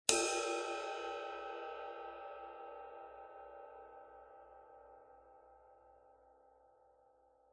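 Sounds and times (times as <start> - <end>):
raw bell dry ride cymbal hit on the bow: 0.1 - 3.4.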